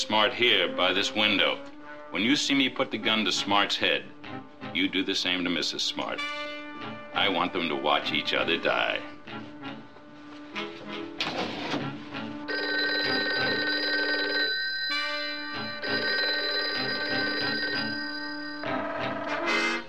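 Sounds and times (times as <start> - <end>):
speech: 0.0 - 9.1
telephone bell ringing: 12.5 - 19.6.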